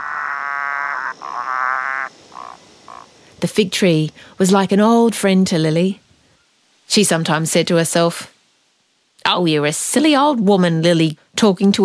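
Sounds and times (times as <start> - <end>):
frogs croaking in a buzzy trill: 0.0 - 4.9
speech: 3.4 - 6.0, 6.9 - 8.3, 9.3 - 11.8.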